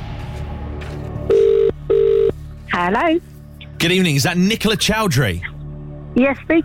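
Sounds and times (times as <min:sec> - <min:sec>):
telephone ringback tones: 0:01.3 - 0:02.4
speech: 0:03.0 - 0:05.5, 0:06.2 - 0:06.6.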